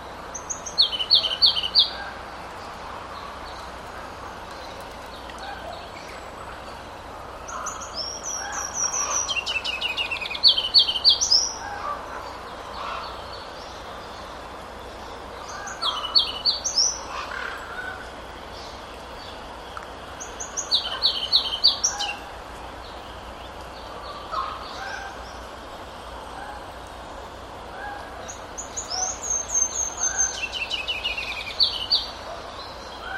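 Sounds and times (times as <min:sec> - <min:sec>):
ruby-crowned kinglet singing in springtime: 0:00.0 - 0:25.5, 0:27.9 - 0:33.1
soft hiss: 0:00.0 - 0:33.1.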